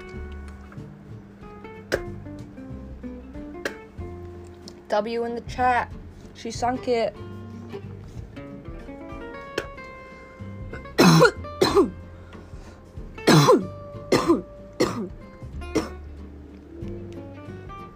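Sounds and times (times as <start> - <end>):
faint music: 0.0 - 17.9
speech: 4.9 - 7.3
harsh hacking coughs: 10.8 - 12.0, 13.2 - 16.0.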